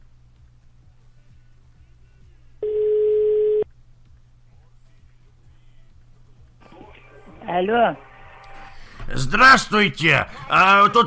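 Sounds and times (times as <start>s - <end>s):
faint low hum: 0.0s - 9.4s
telephone ringing tone while a call goes through: 2.6s - 3.6s
speech: 7.6s - 8.1s, 9.1s - 11.0s.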